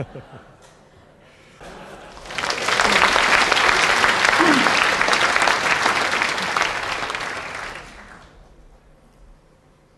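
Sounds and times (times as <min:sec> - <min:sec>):
speech: 0:00.0 - 0:00.7
laughter: 0:00.0 - 0:00.8, 0:01.6 - 0:07.0
large audience applauding: 0:01.6 - 0:08.5.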